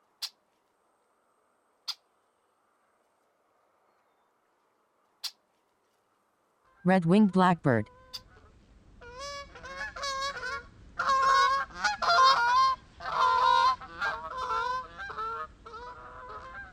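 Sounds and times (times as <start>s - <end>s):
speech: 6.8s - 8.0s
Canada goose honking: 9.1s - 16.7s.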